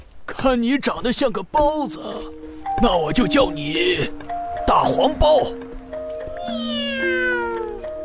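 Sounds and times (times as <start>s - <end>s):
speech: 0.4s - 5.6s
cat meowing: 6.3s - 7.9s.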